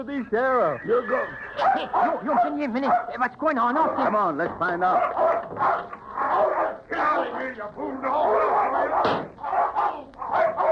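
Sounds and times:
speech: 0.0 - 9.4
dog barking and snarling aggressively: 1.6 - 3.2, 4.9 - 6.8, 8.4 - 10.7.

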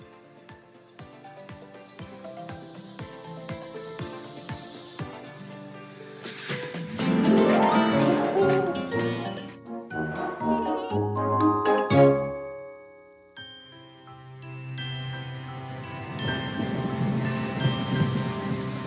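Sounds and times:
music: 0.0 - 18.8
tinkling chimes: 7.0 - 18.8
steady rain from a tropical storm: 15.5 - 18.8.

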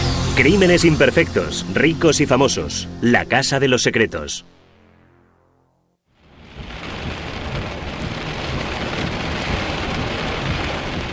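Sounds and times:
speech: 0.4 - 4.6
deep continuous thunder rumbling in a violent thunderstorm: 6.2 - 11.1
heavy rain in a violent thunderstorm: 6.2 - 11.1.

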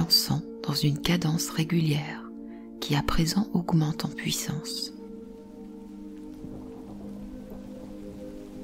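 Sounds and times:
low constant hum: 0.0 - 8.6
speech: 0.8 - 2.2, 2.9 - 5.0
rain pattering on a surface: 3.9 - 8.6.

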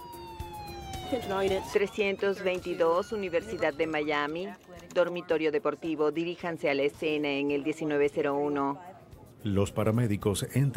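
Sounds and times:
police car or ambulance siren wailing: 0.0 - 4.6
speech: 1.1 - 10.7.

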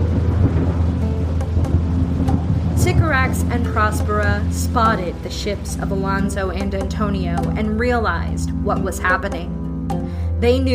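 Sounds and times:
brief thunder crackles during a tempest: 0.0 - 5.9
steady heavy rain during a tempest over a small island: 0.0 - 6.1
deep low thunder rumble during a tempest over a small island: 0.0 - 7.6
speech: 3.1 - 9.6, 10.4 - 10.7.

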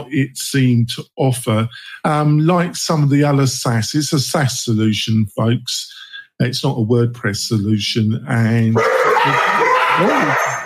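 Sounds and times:
speech: 0.0 - 10.6
dogs barking: 8.8 - 10.6.

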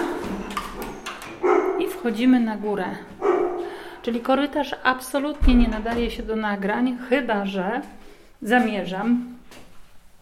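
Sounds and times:
dog whining: 0.0 - 1.8
speech: 2.0 - 3.2, 4.0 - 9.4.

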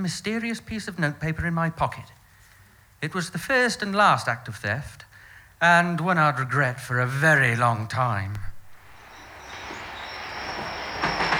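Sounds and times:
speech: 0.0 - 2.2, 3.0 - 8.5
thin high metallic whine of a train: 8.4 - 11.3
train running on rails with clickety-clack: 8.4 - 11.3.

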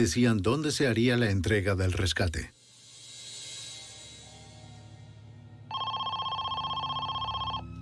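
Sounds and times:
speech: 0.0 - 2.6
telephone ringing with rapid buzzy trilling: 5.7 - 7.7.

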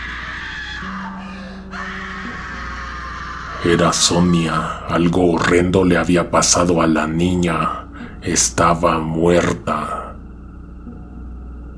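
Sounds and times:
harrowing scream: 0.0 - 6.8
low droning tone: 0.8 - 11.7
speech: 3.7 - 10.0.

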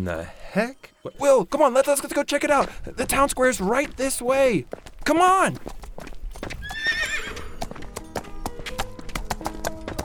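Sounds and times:
speech: 0.0 - 5.8
pony hooves clip-clopping: 1.8 - 10.0
pony whinnying: 6.6 - 7.7.

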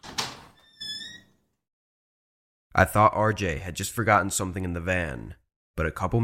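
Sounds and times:
front door latch thunk of a building: 0.0 - 0.6
squeaky hinge whine of a building's front door: 0.0 - 1.4
speech: 2.8 - 6.2.

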